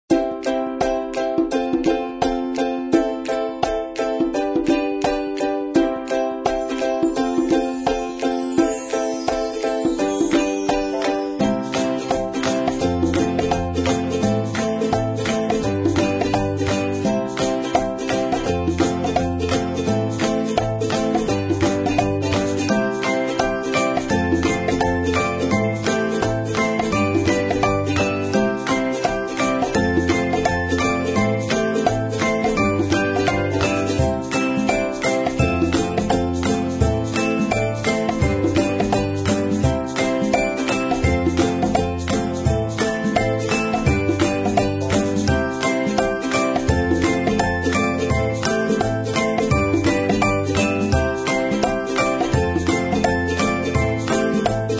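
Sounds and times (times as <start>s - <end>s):
light ukulele music: 0.1s - 54.7s.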